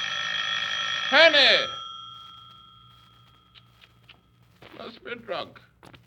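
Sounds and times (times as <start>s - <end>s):
telephone ringing with a metallic bell tone: 0.0s - 4.9s
speech: 1.1s - 1.8s, 5.1s - 5.7s.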